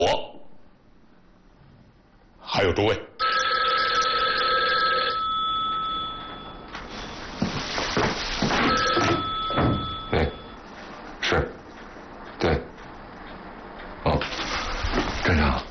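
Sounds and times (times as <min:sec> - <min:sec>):
speech: 0:02.6 - 0:03.1
telephone ringing with a steady electronic tone: 0:03.2 - 0:07.2, 0:08.6 - 0:10.7
rustling: 0:06.8 - 0:08.9, 0:14.2 - 0:15.6.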